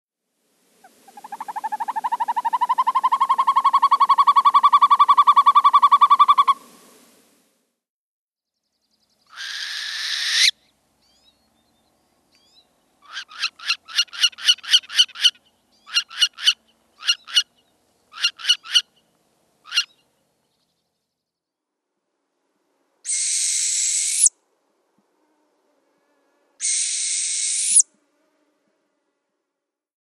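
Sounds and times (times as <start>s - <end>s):
Northern Hawk Owl calling: 0.8s - 6.7s, 9.3s - 10.7s, 12.4s - 19.0s, 19.6s - 20.0s, 23.1s - 24.3s, 26.6s - 27.8s.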